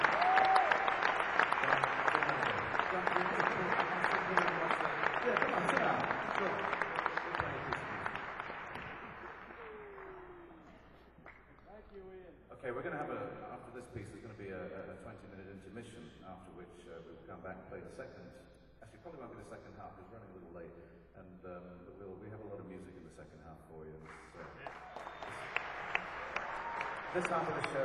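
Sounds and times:
audience applause at a concert: 0.0s - 10.9s, 24.1s - 27.8s
speech: 27.1s - 27.8s.

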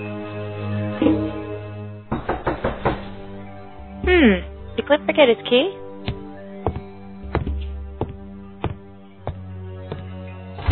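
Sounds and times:
steady low hum: 0.7s - 9.8s
firm knocks on an apartment door: 2.1s - 3.1s
speech: 4.2s - 5.8s.

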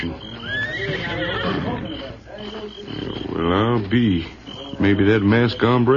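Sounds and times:
horse neighing: 0.0s - 3.8s
horse hooves shifting: 0.0s - 5.9s
speech: 0.0s - 5.9s.

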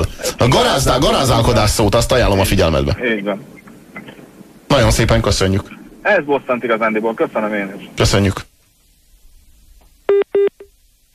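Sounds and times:
speech: 0.4s - 3.6s, 4.7s - 8.4s
telephone line tone beeps after a caller hangs up: 10.1s - 10.7s.

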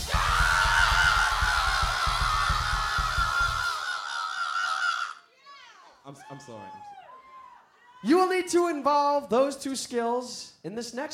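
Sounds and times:
audience screaming a blood-curdling yell: 0.0s - 8.2s
speech: 6.4s - 6.9s, 8.0s - 11.1s.

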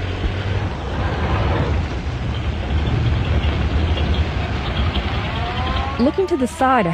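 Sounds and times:
car pulling away and driving off down an alley: 0.0s - 6.9s
road noise: 0.0s - 6.9s
speech: 6.0s - 6.9s.

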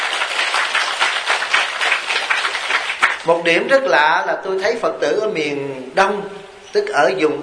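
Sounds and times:
audience applause: 0.0s - 3.3s
speech: 3.2s - 7.4s.

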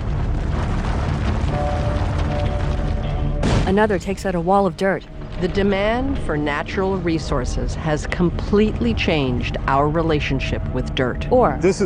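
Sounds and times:
crackling debris from blasting through rock: 0.0s - 4.4s
rumble of mining explosions blasting through a ridge: 0.0s - 11.8s
speech: 3.7s - 11.8s.

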